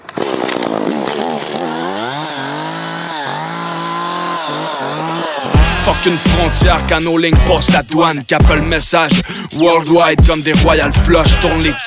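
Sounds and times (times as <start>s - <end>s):
chainsaw engine revving: 0.0s - 7.8s
speech: 6.0s - 11.8s.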